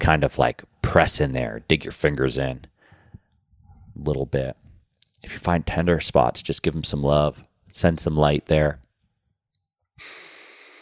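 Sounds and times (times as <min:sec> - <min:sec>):
speech: 0:00.0 - 0:02.7, 0:04.0 - 0:04.6, 0:05.2 - 0:08.8, 0:10.0 - 0:10.2
person breathing loudly through the nose: 0:10.0 - 0:10.8.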